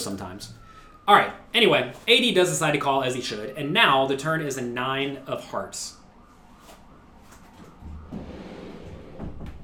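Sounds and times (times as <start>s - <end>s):
speech: 0.0s - 6.0s
door pushed shut with a soft thud: 7.8s - 9.6s.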